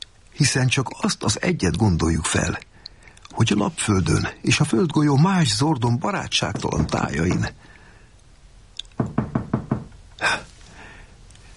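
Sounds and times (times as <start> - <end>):
speech: 0.4 - 2.7, 3.4 - 7.7
heavy knocks pounding on a door: 6.5 - 7.5, 9.0 - 9.9
short breathy gasp-like rush of air: 10.2 - 11.2.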